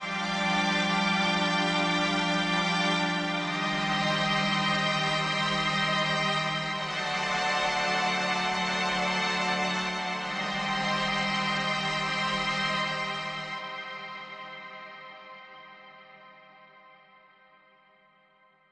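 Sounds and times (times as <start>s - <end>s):
vibrato strings melody: 0.0s - 14.2s.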